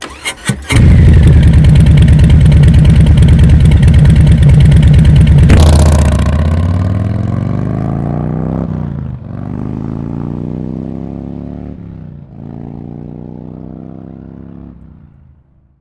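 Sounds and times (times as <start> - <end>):
Harley Softail 107 with slotted slip-on mufflers taking off: 0.1 - 9.9.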